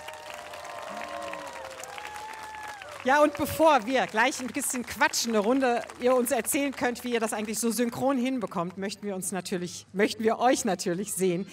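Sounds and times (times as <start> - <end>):
audience applause welcoming dancers onto a show: 0.0 - 8.2
speech: 3.0 - 11.5.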